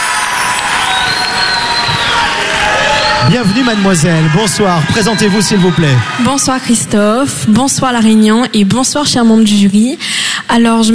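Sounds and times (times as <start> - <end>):
excited shouts: 0.0 - 6.6
large audience clapping: 0.0 - 6.8
whistles: 0.3 - 4.0
speech: 3.3 - 10.9.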